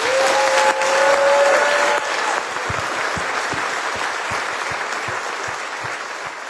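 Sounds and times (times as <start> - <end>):
audience applauding: 0.0 - 6.4.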